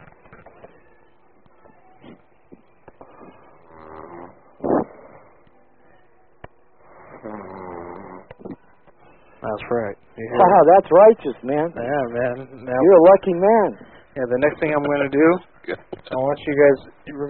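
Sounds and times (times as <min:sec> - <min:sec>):
woman snoring over a telephone line: 0:03.0 - 0:05.4, 0:06.9 - 0:08.3
speech: 0:09.5 - 0:17.2.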